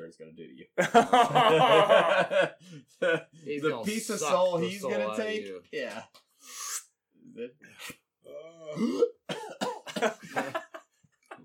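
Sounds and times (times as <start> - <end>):
speech: 0.1 - 6.6, 7.4 - 10.6
laughter: 0.8 - 3.3, 10.0 - 11.4
harsh hacking coughing fit: 8.6 - 10.2.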